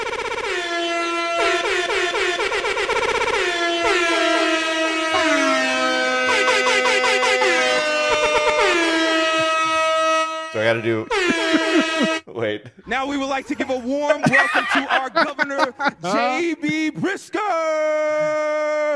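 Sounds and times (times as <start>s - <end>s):
layered air horn blasts: 0.0s - 12.3s
speech: 10.7s - 18.9s
laughter: 11.0s - 12.3s, 13.2s - 18.9s.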